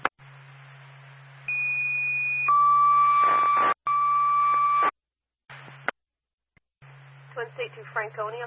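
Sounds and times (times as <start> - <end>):
fire department dispatch paging tones over radio: 1.5 - 4.9
speech: 7.7 - 8.4.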